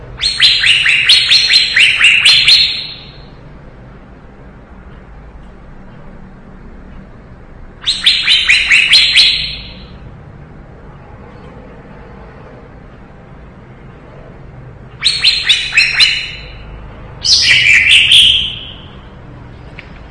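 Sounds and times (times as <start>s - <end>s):
cucak ijo leafbird singing in lively gacor style: 0.2s - 3.4s, 7.8s - 10.0s, 15.0s - 19.1s.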